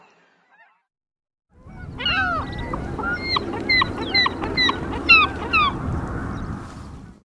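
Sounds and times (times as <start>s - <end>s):
Thayer's gull calling: 1.6s - 7.1s.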